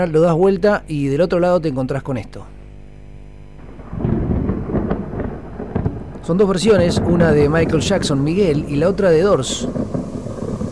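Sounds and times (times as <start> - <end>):
speech: 0.0 - 2.6, 6.2 - 10.0
rain falling: 3.6 - 10.7
thunder rumbling: 3.6 - 10.7.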